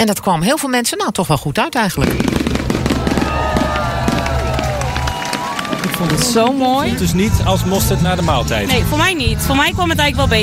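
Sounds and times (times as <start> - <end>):
speech: 0.0 - 2.6, 6.0 - 10.4
whistling rockets rising: 2.0 - 6.3
fireworks bursting in cracks and pops: 2.0 - 7.0
murmuring crowd: 2.0 - 9.1.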